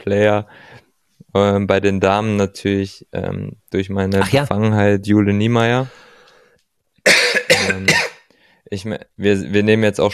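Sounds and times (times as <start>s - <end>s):
speech: 0.0s - 6.1s, 7.6s - 8.0s, 8.7s - 10.1s
raspy breath: 5.9s - 6.6s
harsh coughs: 7.1s - 8.3s.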